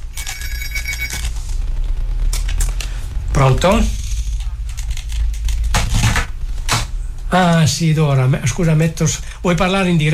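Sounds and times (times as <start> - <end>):
telephone ringing with an electronic trill: 0.0 - 1.4
low steady rumble: 0.0 - 10.1
speech: 3.4 - 4.0, 7.3 - 10.1.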